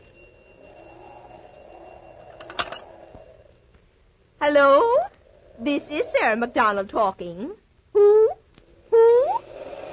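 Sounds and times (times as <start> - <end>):
old cranked party-line telephone bell ringing: 0.0 - 3.5
speech: 4.4 - 5.0, 5.6 - 7.6.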